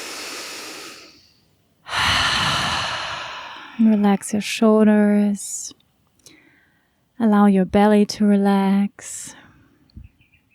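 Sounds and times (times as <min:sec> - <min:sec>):
deep inhale and exhale through an open mouth: 0:00.0 - 0:04.0
speech: 0:03.8 - 0:05.8, 0:07.2 - 0:09.4.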